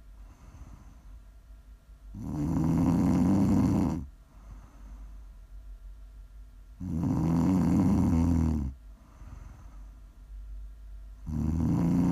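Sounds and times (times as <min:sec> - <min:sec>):
quiet breathing: 0:00.0 - 0:01.5, 0:02.1 - 0:05.7, 0:06.9 - 0:10.5, 0:11.1 - 0:12.1
loud snoring: 0:02.1 - 0:04.1, 0:06.8 - 0:08.8, 0:11.2 - 0:12.1.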